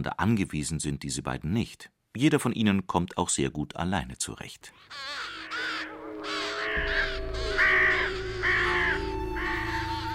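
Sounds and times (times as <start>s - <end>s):
speech: 0.0s - 5.6s
ravens cawing: 4.8s - 10.1s.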